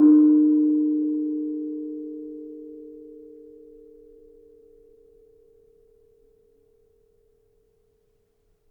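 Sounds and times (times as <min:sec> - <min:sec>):
Kenong gong note D sharp: 0:00.0 - 0:04.4.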